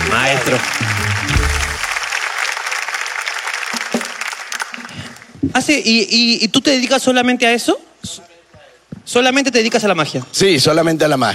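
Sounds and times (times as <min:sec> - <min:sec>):
person cheering: 0:00.0 - 0:02.0
audience applause for a magician: 0:00.0 - 0:05.4
speech: 0:00.2 - 0:01.3, 0:05.5 - 0:08.3, 0:09.1 - 0:11.3.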